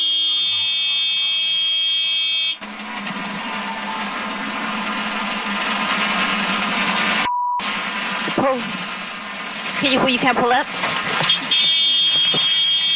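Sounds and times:
loud steady electronic cockpit warning buzzer: 0:00.0 - 0:02.6, 0:11.3 - 0:12.9
roaring rush of engine noise: 0:02.4 - 0:12.9
brief tone: 0:07.2 - 0:07.6, 0:11.3 - 0:12.9
speech: 0:09.8 - 0:10.8.

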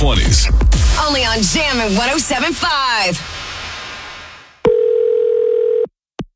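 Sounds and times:
speech: 0:00.0 - 0:03.4
soft rush of hiss: 0:00.8 - 0:04.6
steady telephone dial tone: 0:04.7 - 0:05.9.

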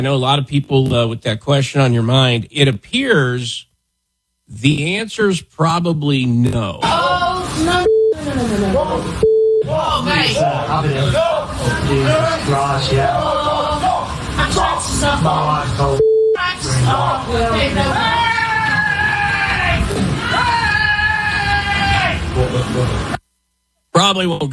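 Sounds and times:
speech: 0:00.0 - 0:03.7, 0:04.5 - 0:16.0, 0:16.6 - 0:18.3, 0:22.4 - 0:23.1, 0:24.0 - 0:24.5
people screaming and shouting in panic at an attacking tiger: 0:17.9 - 0:22.3.

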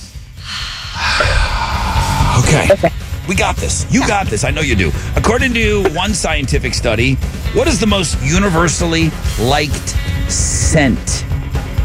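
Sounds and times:
deep breath in: 0:00.4 - 0:02.6
speech: 0:02.5 - 0:11.3.

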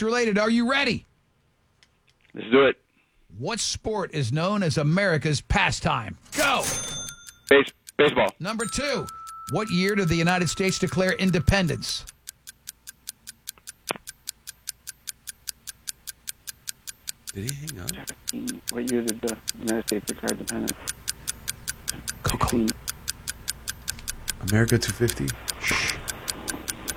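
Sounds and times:
speech: 0:00.0 - 0:01.1, 0:02.3 - 0:06.9, 0:07.5 - 0:12.2, 0:17.3 - 0:21.0, 0:22.2 - 0:22.8, 0:24.4 - 0:25.9
clock ticking as a quiz countdown timer: 0:06.3 - 0:26.9.

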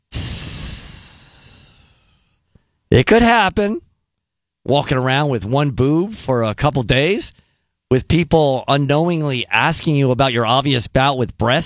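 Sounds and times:
air hissing out of a deflating balloon: 0:00.0 - 0:02.4
speech: 0:02.9 - 0:03.8, 0:04.6 - 0:11.6.

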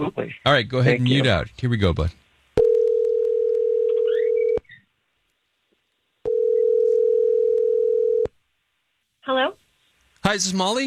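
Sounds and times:
speech: 0:00.0 - 0:02.2, 0:10.3 - 0:10.8
long electronic telephone tones while placing a call: 0:02.6 - 0:04.6, 0:06.3 - 0:08.3.

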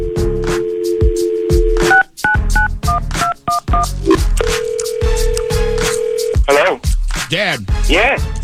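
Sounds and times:
steady telephone dial tone: 0:00.1 - 0:06.8
thumping music beat: 0:00.1 - 0:08.4
dual-pitched telephone keypad beeps: 0:01.9 - 0:06.7
speech: 0:07.6 - 0:08.3.

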